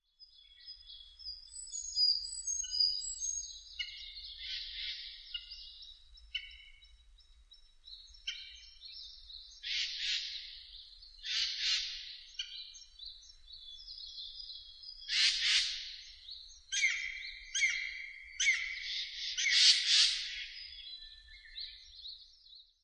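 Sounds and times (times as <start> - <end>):
Japanese green woodpecker: 9.6 - 10.5, 11.2 - 12.7, 15.1 - 16.1, 16.7 - 20.7.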